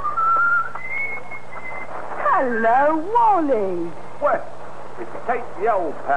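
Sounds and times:
man whistling a jaunty tune: 0:00.0 - 0:01.9
low hum: 0:00.0 - 0:06.1
speech: 0:02.4 - 0:06.1.

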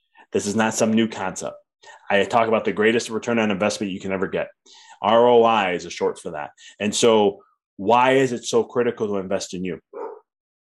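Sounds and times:
speech: 0:00.3 - 0:10.0
dog barking: 0:09.9 - 0:10.3.

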